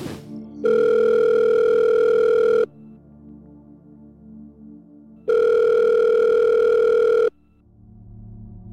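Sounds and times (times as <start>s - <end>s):
telephone dial tone heard through the line during a call on a burner phone: 0.7s - 2.7s, 5.3s - 7.3s.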